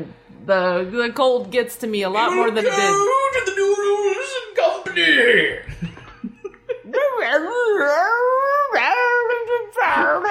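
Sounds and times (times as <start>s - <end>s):
speech: 0.0s - 5.7s, 7.2s - 9.0s
laughter: 5.5s - 7.2s
dog howling: 6.9s - 10.2s.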